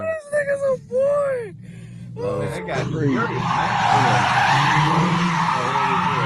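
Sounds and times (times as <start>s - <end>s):
low racing car engine rumble: 0.0s - 5.8s
speech: 2.2s - 5.3s
tires squealing as a small Nissan racing car skids: 2.4s - 6.2s.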